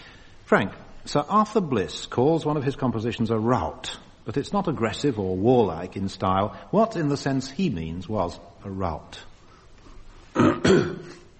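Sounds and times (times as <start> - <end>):
speech: 0.5 - 9.3, 10.4 - 11.1
person with a cold coming on coughing: 10.3 - 11.3.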